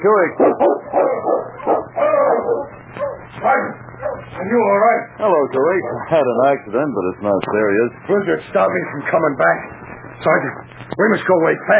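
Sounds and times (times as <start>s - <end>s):
speech: 0.0s - 0.8s, 4.4s - 11.7s
sled dog team barking and yipping: 0.4s - 3.3s, 4.0s - 4.4s.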